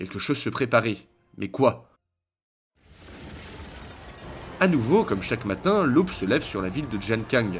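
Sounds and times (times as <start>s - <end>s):
speech: 0.0s - 1.9s, 4.6s - 7.5s
loud explosion with roaring crackling rumble: 2.8s - 5.7s.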